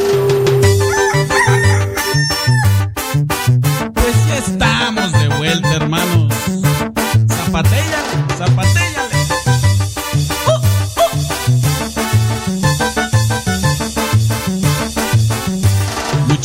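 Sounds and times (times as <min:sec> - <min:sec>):
loud upbeat music track with punchy drumbeat and bass pulse: 0:00.1 - 0:16.4
rooster crowing: 0:00.7 - 0:02.9.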